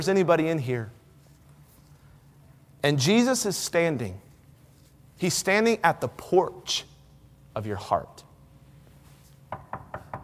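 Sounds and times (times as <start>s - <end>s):
speech: 0.0s - 1.0s, 2.8s - 4.3s, 5.2s - 6.9s, 7.6s - 8.2s
low hum: 0.0s - 10.2s
knocking on a wooden door: 9.5s - 10.2s.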